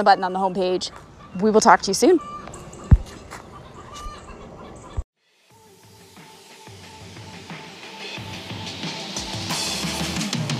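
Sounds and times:
speech: 0.0 - 2.3
chickens clucking in a farmyard: 0.2 - 5.0.

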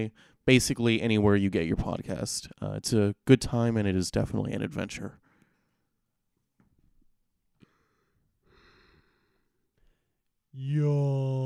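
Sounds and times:
speech: 0.0 - 5.2, 10.6 - 11.4
person yawning: 10.8 - 11.4.

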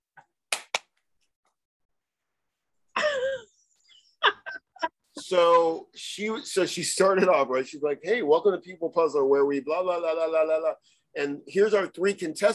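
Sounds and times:
sharp hand claps demonstrating a panelist's clapping: 0.2 - 0.9
speech: 5.3 - 12.5.

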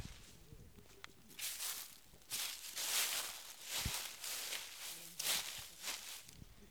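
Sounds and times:
footsteps crunching through dry fallen leaves: 1.2 - 6.4.

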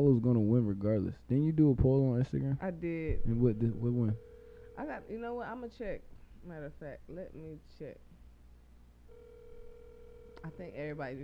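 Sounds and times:
speech: 0.0 - 8.1, 10.4 - 11.2
low hum: 0.0 - 11.2
electronic ringback tone of an unanswered outgoing phone call through a handset: 3.2 - 5.3, 9.1 - 11.0.

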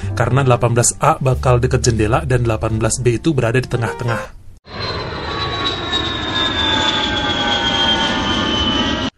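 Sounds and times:
speech: 0.2 - 4.4
jet airplane roaring as it takes off: 4.7 - 9.1.

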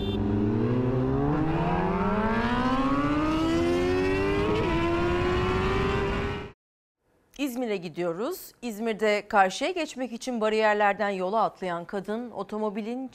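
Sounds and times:
motorcycle engine revving at high speed: 0.0 - 6.6
speech: 7.6 - 13.1.

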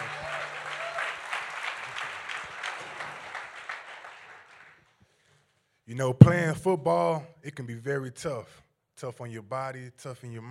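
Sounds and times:
audience applauding a speaker: 0.0 - 4.9
speech: 5.9 - 10.4.

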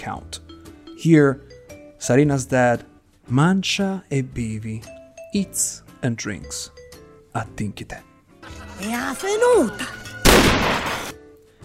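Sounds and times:
speech: 0.0 - 6.8, 7.4 - 8.1, 8.8 - 10.0
loud gunshot: 10.2 - 11.2.

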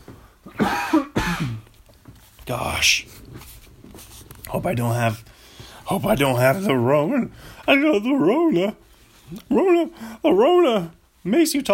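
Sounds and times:
coughing: 0.5 - 1.7
speech: 2.5 - 3.2, 4.5 - 5.3, 5.9 - 11.7.

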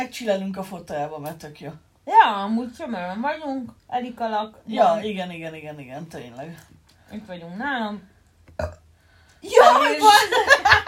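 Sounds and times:
speech: 0.0 - 8.8, 9.4 - 10.8
burp: 8.5 - 8.9.

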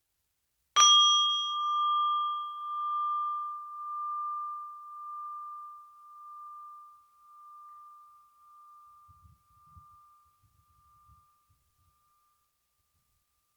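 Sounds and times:
meditation bell struck to begin a guided meditation: 0.8 - 11.2.

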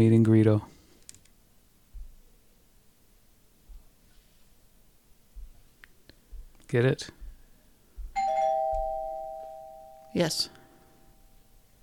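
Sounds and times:
speech: 0.0 - 0.7, 6.7 - 7.2, 10.1 - 10.6
bell struck to end the session: 8.2 - 10.5.

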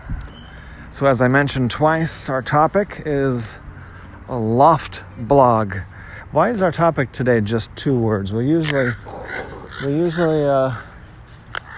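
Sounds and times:
speech: 0.9 - 3.6, 4.3 - 9.2, 9.8 - 10.9
person imitating a crow's caw: 8.7 - 10.8.

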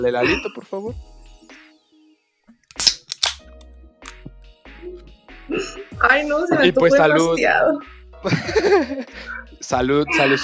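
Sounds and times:
speech: 0.0 - 1.2, 5.5 - 10.4
short crack: 2.6 - 4.2
beer bottle cap popping off with a hiss: 2.7 - 3.6
laughter: 8.2 - 9.1.

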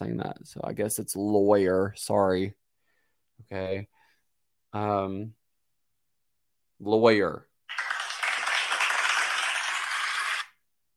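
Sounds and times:
speech: 0.0 - 2.6, 3.4 - 4.0, 4.7 - 5.4, 6.8 - 7.5
dense hissy applause: 7.7 - 10.6.

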